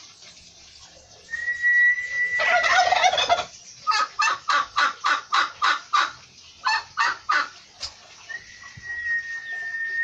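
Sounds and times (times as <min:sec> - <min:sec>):
thin steady whistle: 0:01.3 - 0:02.6, 0:08.3 - 0:10.0
turkey gobbling and yelping: 0:01.3 - 0:10.0.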